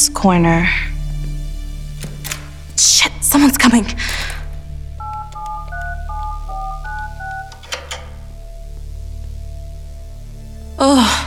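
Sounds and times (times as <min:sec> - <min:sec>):
speech: 0:00.0 - 0:00.9, 0:02.8 - 0:04.2
keypad touch tones being dialed: 0:04.1 - 0:08.2.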